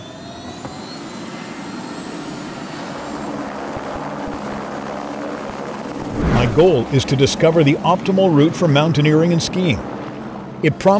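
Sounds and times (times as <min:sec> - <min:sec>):
helicopter in flight with engine roar and rotor chop: 0:02.9 - 0:10.9
speech: 0:06.5 - 0:09.9, 0:10.6 - 0:10.9.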